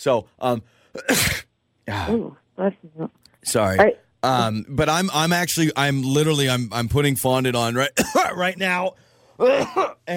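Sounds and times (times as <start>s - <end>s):
speech: 0.0s - 10.1s
person with allergies coughing while putting fondant on a cake: 1.0s - 2.2s, 9.4s - 10.1s.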